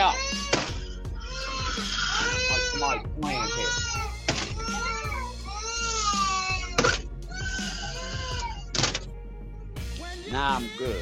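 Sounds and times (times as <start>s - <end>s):
children wailing and screaming inside a house: 0.0s - 8.7s
speech: 10.4s - 11.0s.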